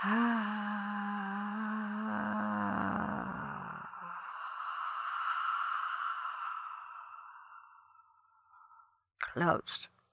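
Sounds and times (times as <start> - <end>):
speech: 0.0 - 0.2, 9.4 - 10.0
slow deep exhalation during a guided breathing exercise: 0.0 - 7.9.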